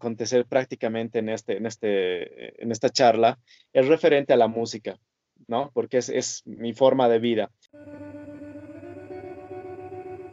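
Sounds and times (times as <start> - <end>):
speech: 0.0 - 8.2
heavily effected tone in a music studio room: 7.8 - 10.3.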